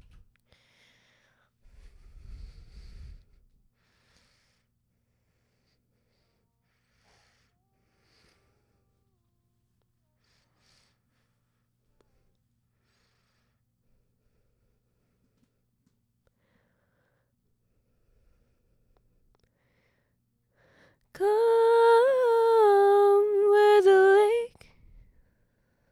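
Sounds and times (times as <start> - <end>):
vocal harmony: 21.2 - 24.6.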